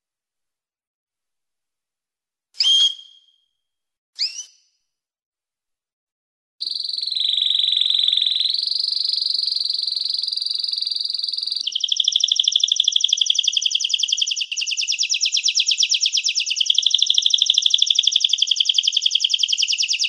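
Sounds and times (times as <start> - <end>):
canary song with chirps and fast buzzing trill: 6.6 - 20.0.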